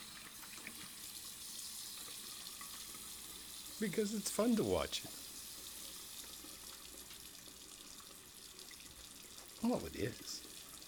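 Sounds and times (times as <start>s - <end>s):
water running from a tap into a sink: 0.0s - 10.8s
speech: 3.8s - 5.2s, 9.6s - 10.5s.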